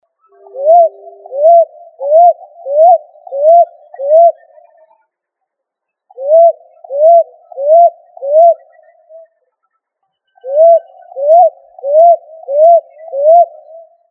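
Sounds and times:
pigeon cooing: 0.3s - 4.5s, 6.2s - 9.2s, 10.5s - 13.9s.

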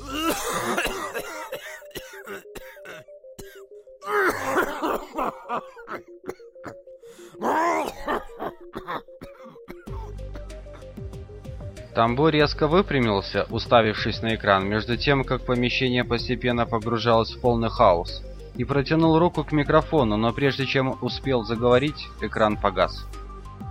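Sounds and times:
person groaning: 0.0s - 0.8s, 4.0s - 5.9s, 7.3s - 8.4s
throat clearing: 0.0s - 6.8s, 7.4s - 10.5s
violent coughing fit: 0.0s - 10.9s
person gasping: 7.0s - 8.4s
speech: 12.0s - 23.2s.

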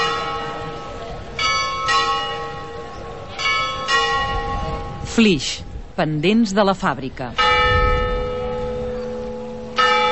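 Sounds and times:
church bells ringing the noon hour in a village church square: 0.0s - 5.0s, 7.3s - 10.1s
speech: 5.2s - 7.6s.

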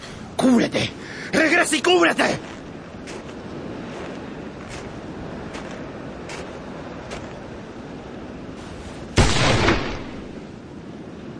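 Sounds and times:
speech: 0.4s - 2.5s
gunshot in a duel: 9.2s - 10.3s.

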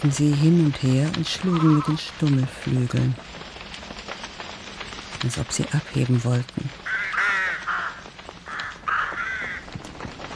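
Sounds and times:
speech: 0.0s - 3.4s, 5.2s - 6.9s
flock of crows cawing loudly: 6.8s - 9.8s.

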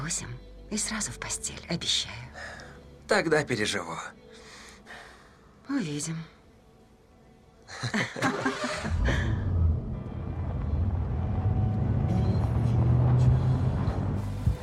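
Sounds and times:
speech: 0.1s - 4.2s, 5.7s - 6.4s, 7.7s - 9.3s
laughter: 7.7s - 9.5s
car engine rumbling as the car pulls into a courtyard: 8.5s - 14.6s.

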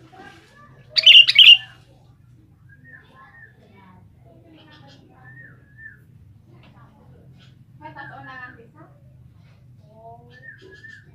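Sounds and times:
Sooty-headed bulbul bubbly song: 1.0s - 1.7s.

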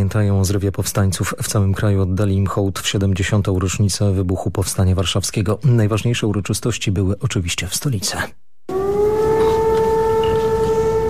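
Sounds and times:
speech: 0.0s - 8.5s
civil defense sirens sounding across a city during a memorial observance: 8.7s - 11.0s.

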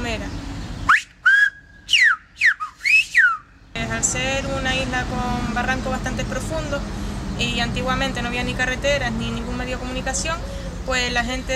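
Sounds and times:
Silbo Gomero whistled language phrases: 0.9s - 3.6s
speech: 4.0s - 11.5s.

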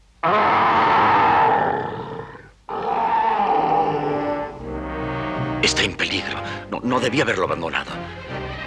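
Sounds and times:
speech: 0.2s - 0.6s, 5.6s - 8.3s
voice imitating a bear's roar: 0.2s - 4.6s.

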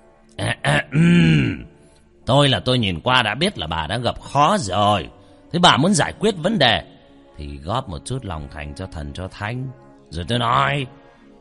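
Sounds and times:
person clearing throat: 0.4s - 1.8s
speech: 0.7s - 1.6s, 2.3s - 11.0s.

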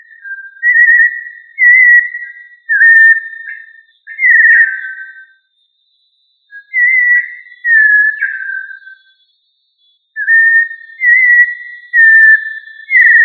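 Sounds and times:
thrush of family Turdidae singing fluted whistled phrases: 0.0s - 13.2s
thin constant tone: 5.2s - 6.8s, 8.6s - 10.7s.

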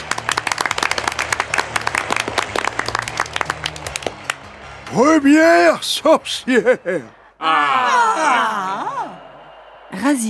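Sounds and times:
audience applause of many hands clapping at a crowded event: 0.0s - 4.5s
speech: 4.9s - 9.0s, 9.9s - 10.2s
laughter: 6.2s - 7.2s.

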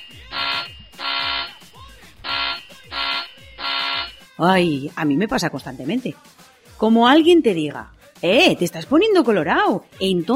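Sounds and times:
harsh electronic alarm buzzer: 0.0s - 4.3s
speech: 4.4s - 10.3s.

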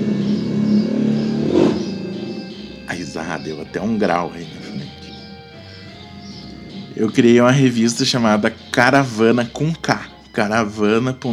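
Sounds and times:
motorcycle passing by: 0.0s - 3.6s
speech: 3.2s - 4.8s, 7.0s - 11.3s.

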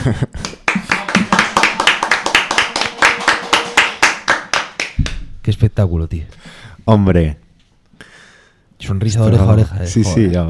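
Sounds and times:
speech: 0.0s - 0.4s, 5.5s - 7.4s, 8.8s - 10.4s
rhythmic applause clapping in a fast steady beat: 0.0s - 5.5s.

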